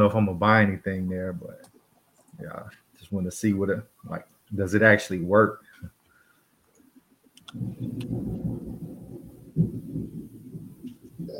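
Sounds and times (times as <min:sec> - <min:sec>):
speech: 0:00.0 - 0:01.7, 0:02.4 - 0:06.0, 0:07.5 - 0:08.8
thunder rumbling during a storm: 0:07.5 - 0:11.3.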